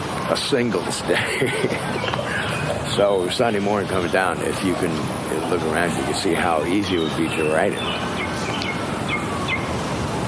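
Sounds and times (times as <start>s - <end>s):
steady rumbling noise: 0.0s - 10.2s
speech: 0.3s - 2.2s, 2.9s - 8.1s
laughter: 0.9s - 3.2s
bird chirping in short high notes: 1.7s - 9.8s.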